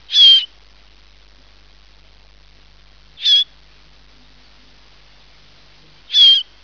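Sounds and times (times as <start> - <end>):
harsh high bird calls: 0.1 - 0.5, 3.2 - 3.5, 6.1 - 6.5.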